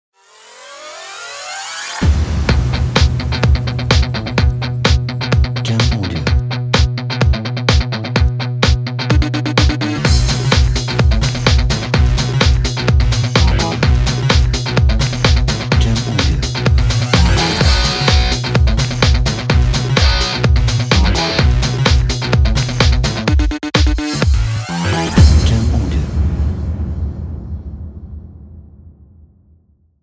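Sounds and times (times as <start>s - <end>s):
energetic heavy action music: 1.4s - 28.3s.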